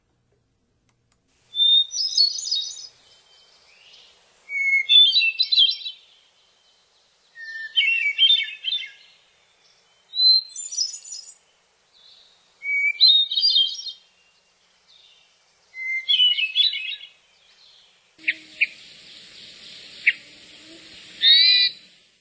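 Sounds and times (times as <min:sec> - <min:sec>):
hermit thrush singing flute-like phrases: 0:01.5 - 0:22.1.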